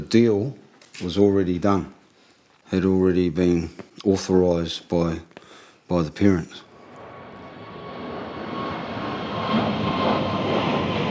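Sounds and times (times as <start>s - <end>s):
speech: 0.1s - 2.0s, 2.7s - 6.7s
loud airplane engine roaring with a faint whine: 6.6s - 11.0s.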